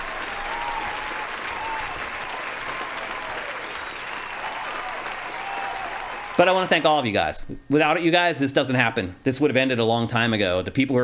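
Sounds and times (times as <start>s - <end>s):
crowd applause: 0.0s - 7.0s
faint cheers: 0.0s - 7.0s
speech: 6.4s - 11.0s.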